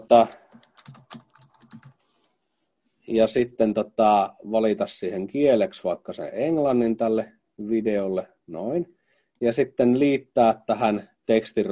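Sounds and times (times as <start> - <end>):
speech: 0.1 - 0.4, 3.1 - 11.6
computer mouse clicking: 0.3 - 2.0.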